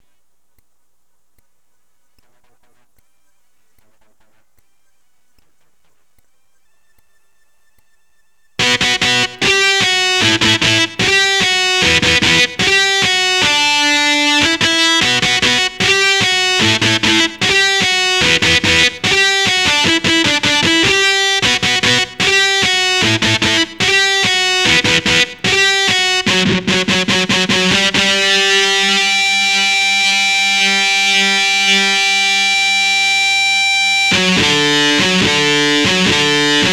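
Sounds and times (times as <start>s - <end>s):
electric guitar power chord: 8.6s - 36.7s.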